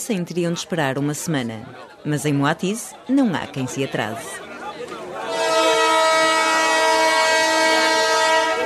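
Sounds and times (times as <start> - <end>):
speech: 0.0 - 4.5
long sustained train whistle blast: 5.2 - 8.6.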